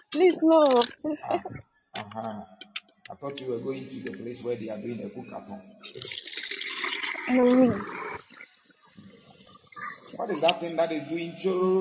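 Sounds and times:
speech: 0.1s - 6.2s, 6.8s - 8.0s, 10.2s - 11.7s
water being poured: 5.8s - 10.6s.

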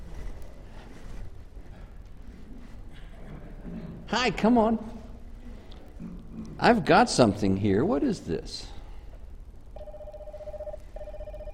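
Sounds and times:
speech: 4.1s - 5.0s, 6.6s - 8.7s
toy telephone ringing with a steady electronic tone: 9.8s - 11.5s.

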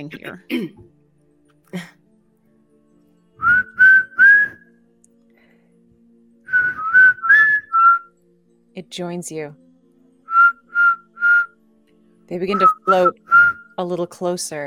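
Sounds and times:
speech: 0.0s - 1.0s, 1.7s - 2.0s, 8.8s - 9.6s, 12.3s - 14.6s
person whistling short rising notes: 3.4s - 4.7s, 6.5s - 8.1s, 10.3s - 11.5s, 12.5s - 13.8s.

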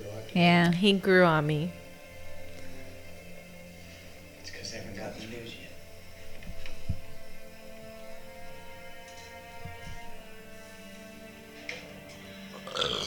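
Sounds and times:
speech: 0.4s - 1.8s
low drawn-out burp: 12.5s - 13.0s.

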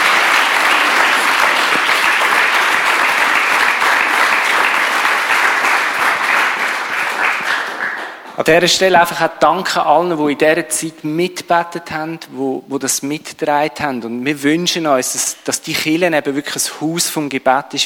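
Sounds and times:
crowd applauding: 0.0s - 8.5s
speech: 8.4s - 17.8s.

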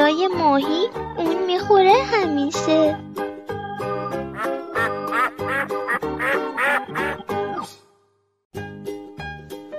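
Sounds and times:
speech: 0.2s - 3.0s
duck quacking: 4.3s - 7.3s.

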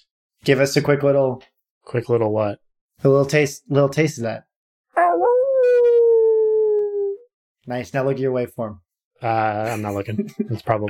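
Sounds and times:
speech: 0.4s - 4.5s, 7.7s - 10.8s
person imitating a wolf howl: 5.0s - 7.2s.

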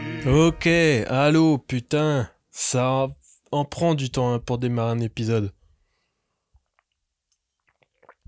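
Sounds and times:
speech: 0.3s - 5.6s
lip and mouth clicks from sipping water: 6.6s - 8.2s
soft gulp of a small sip of water: 7.6s - 8.2s.

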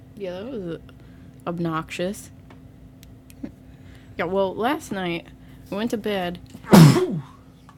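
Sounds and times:
speech: 0.2s - 2.4s, 4.2s - 7.3s
sneeze: 6.6s - 7.4s.

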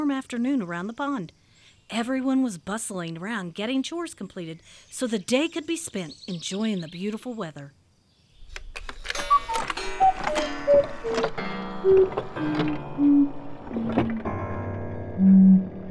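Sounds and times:
speech: 0.1s - 7.8s, 11.0s - 14.1s
sharp mechanical clack of cuckoo clock: 8.4s - 12.9s
malfunctioning cuckoo clock hooting off-key: 8.4s - 14.0s.

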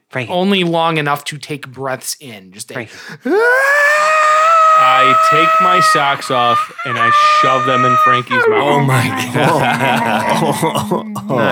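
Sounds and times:
speech: 0.1s - 4.1s, 4.8s - 11.5s
voice imitating a character screaming on seeing a crowd: 3.3s - 9.4s
laughter: 3.5s - 11.5s.

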